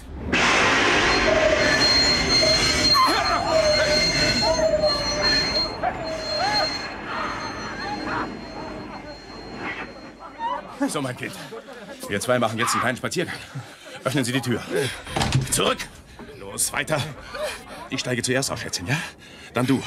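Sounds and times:
heavy rumbling of a moving train: 0:00.0 - 0:10.2
train wheels squealing as the emergency brake is pulled: 0:00.4 - 0:10.6
laughter: 0:02.9 - 0:15.2
speech: 0:10.9 - 0:16.0, 0:16.6 - 0:19.8.

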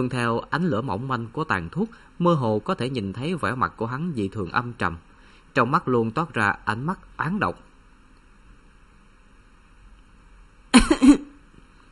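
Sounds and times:
speech: 0:00.0 - 0:07.7
young woman in bed coughing, choking on cigarette smoke: 0:10.7 - 0:11.4.

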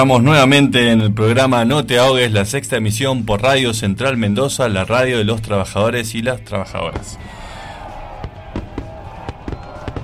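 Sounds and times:
speech: 0:00.0 - 0:07.4
fireworks exploding: 0:06.8 - 0:10.0.

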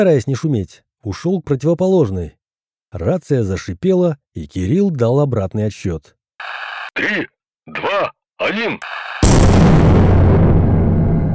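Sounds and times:
speech: 0:00.0 - 0:09.4
powerful firecrackers exploding on both sides of a cinema hall: 0:09.2 - 0:11.3.

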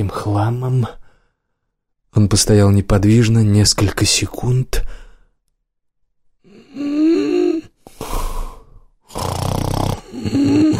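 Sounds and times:
speech: 0:00.0 - 0:01.0, 0:02.1 - 0:05.0
sleeping person snoring loudly: 0:06.4 - 0:10.7.

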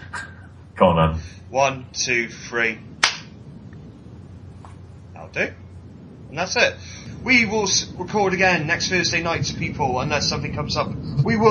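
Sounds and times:
faint rustles: 0:00.0 - 0:11.5
speech: 0:00.8 - 0:02.9, 0:05.3 - 0:05.6, 0:06.3 - 0:11.5
high five hand slap: 0:03.0 - 0:03.3.

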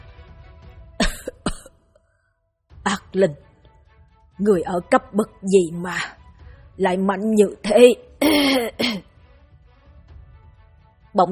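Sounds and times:
old man coughing while clutching his chest: 0:01.0 - 0:01.8, 0:08.2 - 0:09.1
speech: 0:03.1 - 0:03.5, 0:04.4 - 0:06.2, 0:06.8 - 0:08.7.

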